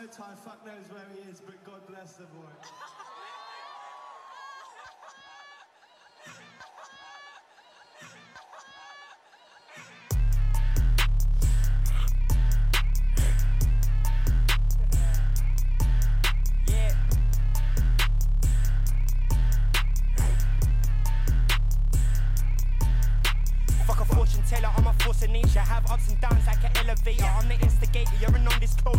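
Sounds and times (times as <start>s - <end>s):
speech: 0.1s - 3.1s
laughter: 2.6s - 10.7s
British grime-style rap single with booming bass and drums: 6.2s - 28.9s.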